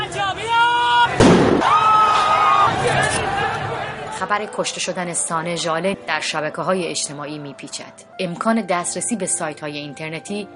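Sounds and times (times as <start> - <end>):
protest crowd shouting and wailing: 0.0 - 5.1
single sharp loud gunshot bang: 1.2 - 1.8
speech: 4.2 - 10.5.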